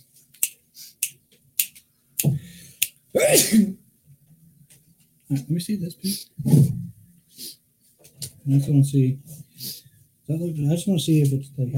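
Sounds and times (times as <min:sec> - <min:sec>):
sharp snap-like clicks: 0:00.4 - 0:03.0
person sneezing: 0:03.2 - 0:03.8
speech: 0:03.2 - 0:03.8, 0:05.3 - 0:06.8, 0:08.5 - 0:09.3, 0:10.3 - 0:11.7.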